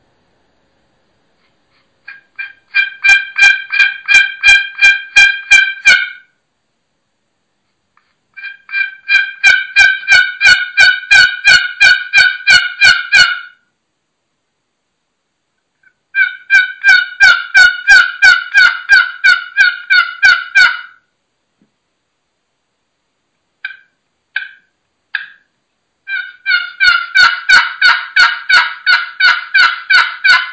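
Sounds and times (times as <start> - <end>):
one-sided wooden turkey box call yelping: 2.1 - 6.4, 8.4 - 13.6, 15.8 - 21.0, 23.6 - 25.5, 26.1 - 30.5.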